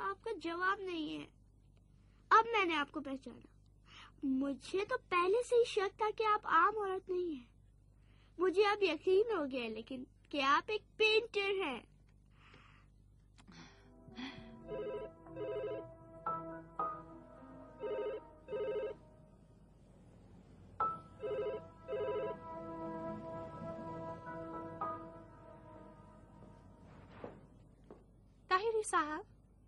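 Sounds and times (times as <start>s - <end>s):
speech: 0.4s - 1.4s, 2.3s - 7.5s, 8.4s - 11.9s, 28.8s - 29.3s
faint tonal background: 11.5s - 29.6s
telephone ringing with bright electronic trills: 14.7s - 16.0s, 17.8s - 19.0s, 21.1s - 22.4s.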